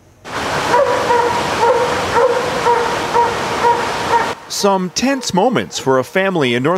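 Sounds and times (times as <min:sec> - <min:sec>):
constant loud rushing roar of rapids: 0:00.3 - 0:05.6
dog stuck at top of rapids on the Seymour River in North Vancouver barking and whimpering: 0:00.6 - 0:06.1
speech: 0:04.6 - 0:06.7.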